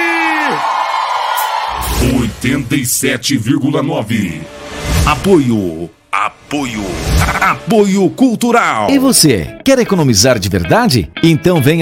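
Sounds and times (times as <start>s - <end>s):
audience whooping and yelling: 0.0s - 2.3s
excited voices: 0.0s - 2.3s
speech: 2.4s - 11.7s.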